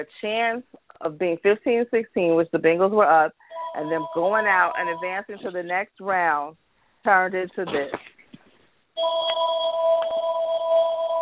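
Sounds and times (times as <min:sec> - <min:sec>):
speech: 0:00.0 - 0:08.1, 0:09.0 - 0:10.2
telephone with electronic ring tone ringing: 0:03.5 - 0:05.7, 0:09.0 - 0:11.1.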